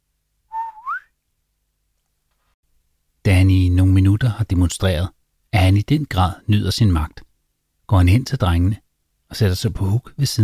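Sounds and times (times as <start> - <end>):
man whistling a short two-note phrase with rising slide: 0.5 - 1.1
speech: 3.3 - 7.3, 7.9 - 10.4.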